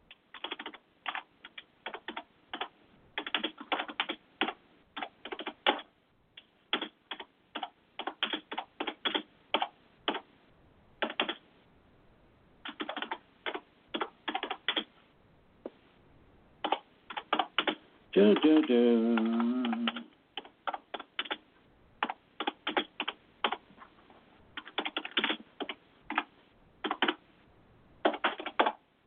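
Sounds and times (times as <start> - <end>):
typing on a computer keyboard: 0.1 - 5.9, 6.7 - 10.3, 11.0 - 11.4, 12.6 - 14.9, 16.6 - 21.4, 22.0 - 23.6, 24.6 - 27.2, 28.0 - 28.8
speech: 18.2 - 19.6.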